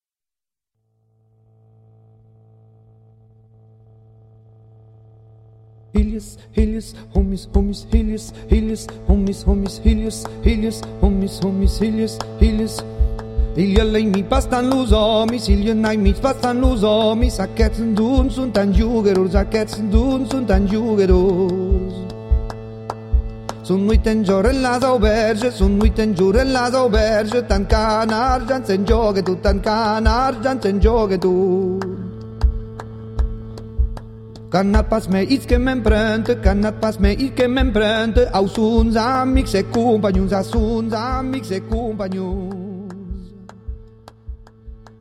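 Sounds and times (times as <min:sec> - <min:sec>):
person singing: 0:06.0 - 0:22.6, 0:23.5 - 0:32.4, 0:34.4 - 0:43.8.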